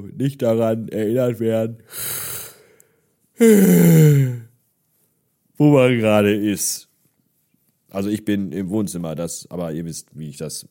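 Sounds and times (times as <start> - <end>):
speech: 0.0 - 2.4, 3.4 - 4.4, 5.6 - 6.9, 7.9 - 10.6
long loud voiced yawn with breathy inhale: 3.4 - 4.5.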